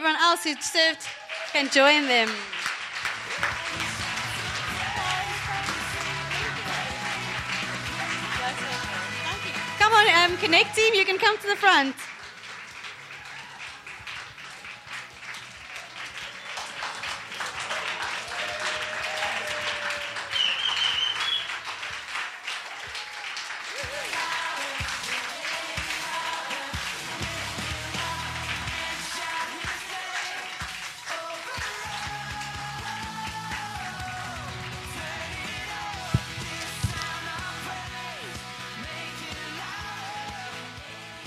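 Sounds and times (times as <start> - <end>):
crowd clapping and cheering in a large room: 0.0 - 41.2
speech: 0.3 - 2.7, 10.0 - 12.1
whoops from the crowd: 13.1 - 15.0, 17.7 - 21.6, 22.6 - 24.1.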